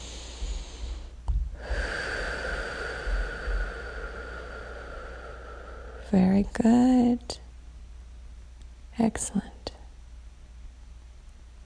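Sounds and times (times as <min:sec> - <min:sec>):
group of people taking deep breaths at a prayer gathering: 0:00.0 - 0:06.1
speech: 0:06.1 - 0:07.4, 0:09.0 - 0:09.8.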